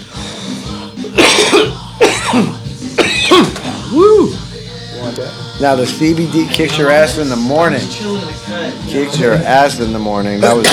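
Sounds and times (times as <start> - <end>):
speech: 1.1 - 2.6, 5.6 - 10.7
person coughing harshly after smoking: 1.1 - 3.8, 10.4 - 10.7.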